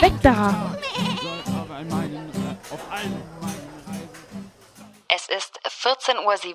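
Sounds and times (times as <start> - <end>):
speech: 0.2 - 1.1, 5.3 - 6.5
goat bleating: 0.4 - 2.1.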